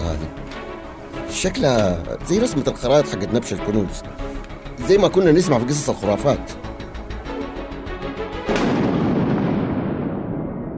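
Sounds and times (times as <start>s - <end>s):
speech: 1.3s - 6.6s
loud thunderclap rolling into a deep rumble: 8.4s - 10.7s.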